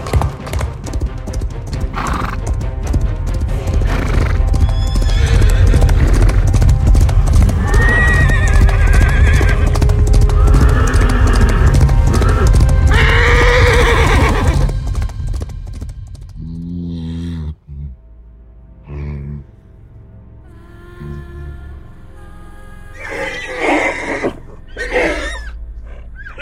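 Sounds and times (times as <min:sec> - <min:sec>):
horse hooves clip-clopping: 0:00.0 - 0:17.0
horse whinnying: 0:03.9 - 0:06.4, 0:07.5 - 0:14.7, 0:23.0 - 0:26.4.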